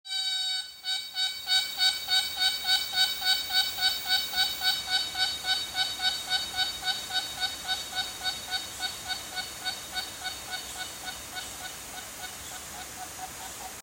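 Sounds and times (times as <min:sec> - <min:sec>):
cicada buzzing: 0:00.1 - 0:13.8.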